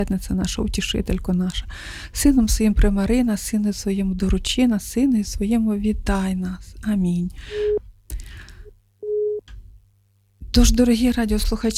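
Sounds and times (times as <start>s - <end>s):
speech: 0.0s - 7.8s, 10.6s - 11.7s
telephone line tone of an incoming call on a phone-in line: 7.5s - 7.8s, 9.0s - 9.4s.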